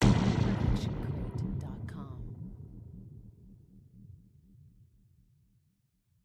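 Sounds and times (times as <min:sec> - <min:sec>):
designed sci-fi hit: 0:00.0 - 0:03.6.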